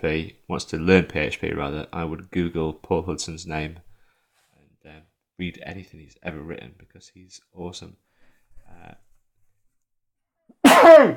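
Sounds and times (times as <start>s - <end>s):
speech: 0.0s - 3.8s, 4.8s - 8.1s, 8.7s - 9.0s, 11.0s - 11.1s
sneeze: 10.6s - 11.1s.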